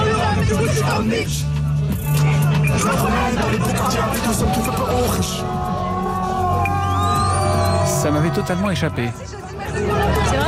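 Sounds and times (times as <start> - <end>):
dense hubbub of voices: 0.0 - 10.4
large crowd of fans roaring and cheering at an open-top bus parade: 0.0 - 10.4
speech: 1.0 - 5.9, 8.0 - 10.4
shouts and whoops: 5.3 - 8.7.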